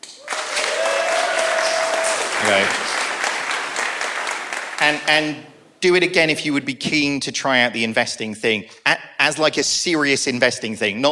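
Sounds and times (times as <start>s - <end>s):
audience applause: 0.0s - 5.0s
speech: 2.5s - 2.9s, 4.8s - 11.1s.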